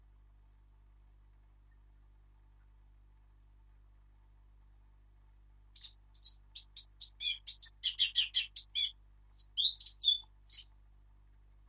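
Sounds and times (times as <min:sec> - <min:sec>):
faint low hum: 0:00.0 - 0:11.6
Eurasian blackcap warbling song: 0:05.8 - 0:10.7.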